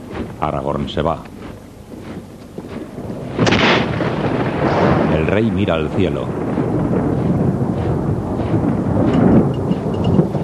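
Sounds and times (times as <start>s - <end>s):
faint hiss of rain: 0.0s - 10.4s
speech: 0.4s - 1.5s, 5.3s - 6.6s
thunder rumbling in a stormy night: 2.5s - 10.4s.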